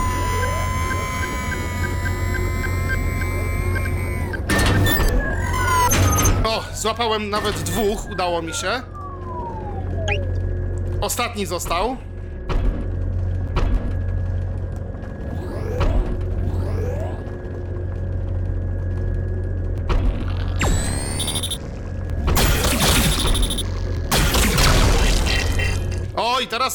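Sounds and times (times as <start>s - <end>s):
loud harsh bursts of crackling noise: 0.0s - 6.2s, 12.8s - 26.2s
deep steady electronic drone with tonal sweeps in a video game boss approach effect: 0.0s - 26.2s
speech: 6.8s - 9.0s, 11.0s - 12.1s, 26.5s - 26.7s.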